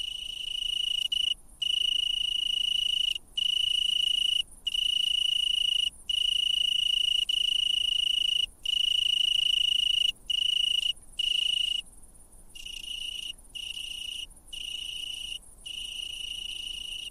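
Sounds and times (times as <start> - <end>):
Italian tree cricket stridulation: 0.0 - 17.0.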